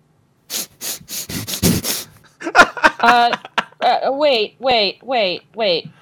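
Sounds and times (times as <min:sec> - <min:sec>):
exaggerated nose sniffing: 0:00.5 - 0:02.2
person making voiced vocal noises: 0:00.5 - 0:02.2
speech: 0:03.0 - 0:05.9.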